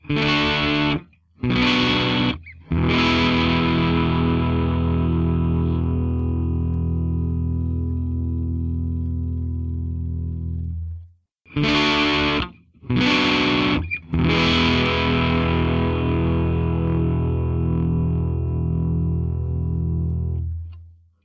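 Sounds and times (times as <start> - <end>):
electric guitar chords with gain on neck and bridge pickups: 0.0 - 20.9.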